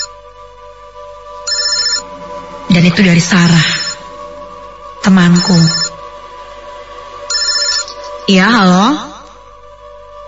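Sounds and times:
telephone ringing late at night with electronic ringtone: 1.5s - 2.1s, 3.6s - 4.0s, 5.3s - 6.0s, 7.3s - 8.2s
speech: 2.8s - 3.9s, 5.0s - 5.9s, 8.3s - 9.1s.

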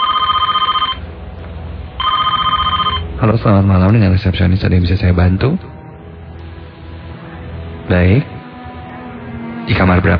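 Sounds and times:
reception desk telephone ringing with warbling electronic tones: 0.0s - 1.0s, 2.0s - 3.1s
speech: 3.2s - 5.8s, 7.9s - 8.3s, 9.7s - 10.1s.

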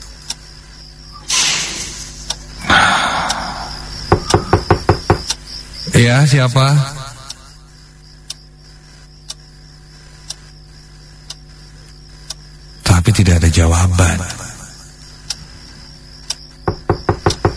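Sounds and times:
quiet hiss: 0.0s - 17.5s
hissing rustling noise: 1.2s - 2.6s
sharp knocks on a bedroom door: 4.1s - 5.3s, 16.6s - 17.5s
speech: 6.0s - 7.0s.

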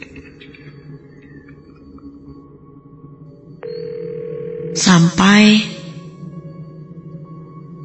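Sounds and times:
telephone ringback tone through the earpiece: 3.6s - 4.9s
speech: 4.8s - 5.7s.

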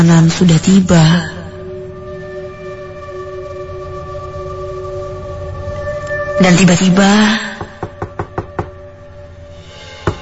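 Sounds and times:
speech: 0.0s - 1.4s, 6.4s - 7.4s
firm knocks on an apartment door: 7.6s - 8.8s, 10.0s - 10.2s.

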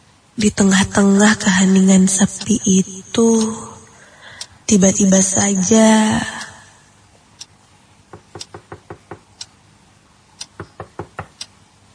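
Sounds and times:
speech: 0.4s - 3.7s, 4.7s - 6.5s
knocking on a house's front door: 8.1s - 9.3s, 10.6s - 11.4s.

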